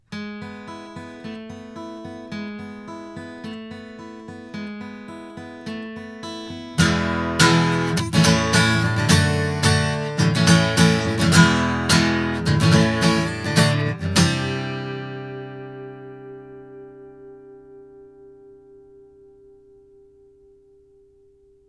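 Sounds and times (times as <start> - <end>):
Blue Encore200 guitar: 0.0 - 21.6.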